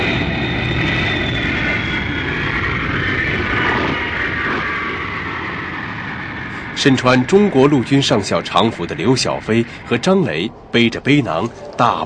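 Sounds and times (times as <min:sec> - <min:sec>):
Boeing 747 airliner landing at Beijing Capital International Airport: 0:00.0 - 0:12.0
speech: 0:06.8 - 0:12.0.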